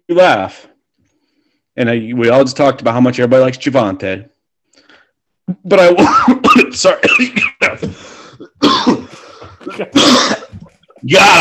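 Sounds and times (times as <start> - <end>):
speech: 0.1 - 0.7, 1.8 - 4.3, 5.5 - 11.3
person clearing throat: 6.0 - 10.7
person coughing hard from an air bubble stuck in the throat: 6.0 - 10.8.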